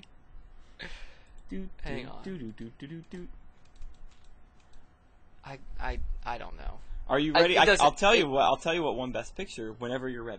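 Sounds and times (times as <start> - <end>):
low hum: 0.0 - 10.3
speech: 1.5 - 3.4, 5.5 - 10.3
fingers typing on a computer keyboard: 3.6 - 4.8.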